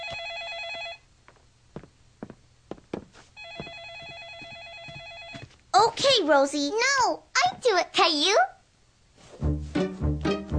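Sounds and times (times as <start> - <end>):
telephone ringing: 0.0 - 1.1, 3.4 - 5.6
speech: 5.8 - 8.5.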